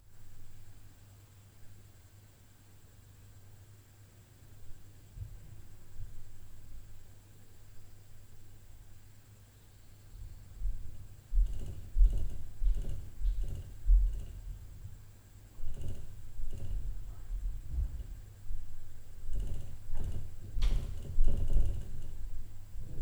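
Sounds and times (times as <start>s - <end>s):
low-frequency upstairs noise at night: 10.2s - 23.0s.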